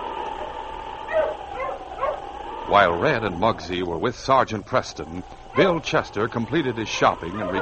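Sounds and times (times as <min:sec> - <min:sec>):
low hum: 0:00.0 - 0:07.6
sled dog yipping and barking among a dog team: 0:01.1 - 0:02.2
speech: 0:02.7 - 0:07.6.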